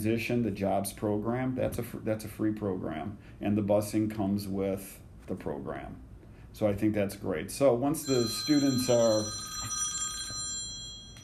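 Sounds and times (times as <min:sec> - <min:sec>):
speech: 0:00.0 - 0:09.8
classic telephone bell ringing: 0:08.0 - 0:11.2.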